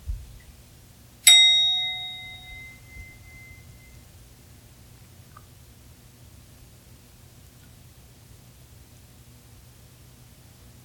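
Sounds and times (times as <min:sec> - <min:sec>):
single bell struck with a bright metallic tone: 0:01.3 - 0:04.0.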